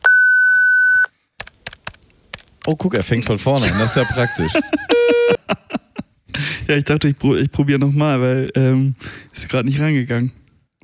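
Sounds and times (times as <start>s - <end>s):
answering machine beep: 0.0s - 1.1s, 4.9s - 5.4s
soft answering machine clicks: 1.0s - 3.4s
speech: 2.7s - 5.7s, 6.7s - 10.4s
laughter: 3.3s - 6.7s.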